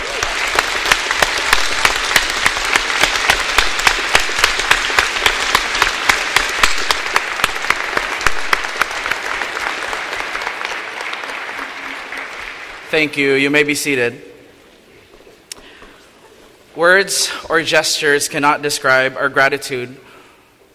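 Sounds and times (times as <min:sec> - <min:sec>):
audience applauding at a graduation ceremony: 0:00.0 - 0:13.2
speech: 0:13.0 - 0:14.3, 0:16.8 - 0:20.1.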